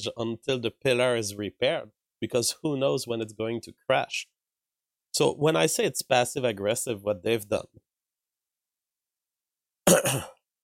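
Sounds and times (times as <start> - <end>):
speech: 0.0 - 4.3, 5.2 - 7.9, 9.9 - 10.4
person coughing: 9.8 - 10.4.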